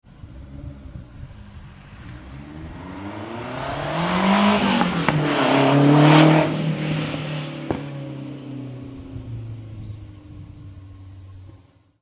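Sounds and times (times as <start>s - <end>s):
car exhaust through dual-tip stainless steel muffler: 0.0s - 11.9s.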